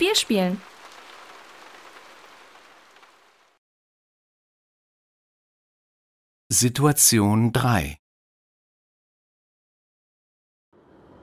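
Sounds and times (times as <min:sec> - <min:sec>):
speech: 0:00.0 - 0:00.7, 0:06.5 - 0:08.0
steady rain pattering on a hard surface: 0:00.0 - 0:03.6.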